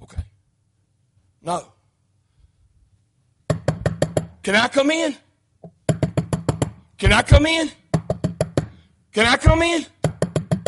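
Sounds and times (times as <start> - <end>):
speech: 1.4 - 1.8, 4.4 - 5.2, 7.0 - 7.8, 9.2 - 9.9
quick firm knocking on a door or surface: 3.5 - 4.4, 5.6 - 8.8, 9.4 - 10.6.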